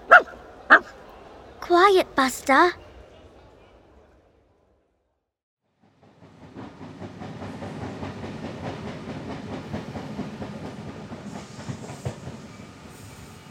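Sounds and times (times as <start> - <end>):
speech: 1.7 - 2.8
train rumbling in on rails: 5.7 - 13.4.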